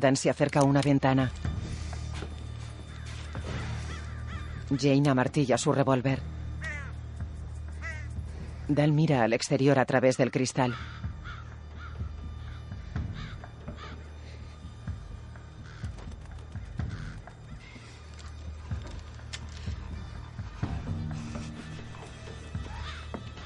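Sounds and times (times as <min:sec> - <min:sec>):
speech: 0:00.0 - 0:01.5, 0:04.7 - 0:06.3, 0:08.7 - 0:11.0
flock of crows cawing as they fly past a house: 0:02.6 - 0:05.0, 0:06.6 - 0:07.0, 0:07.7 - 0:08.6, 0:10.6 - 0:23.4.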